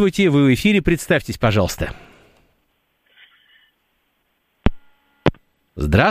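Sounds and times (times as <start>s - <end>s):
speech: 0.0s - 2.1s, 5.8s - 6.0s
faint hiss on a caller's phone line: 3.1s - 3.8s, 4.7s - 5.3s
steady telephone busy tone: 4.8s - 5.3s.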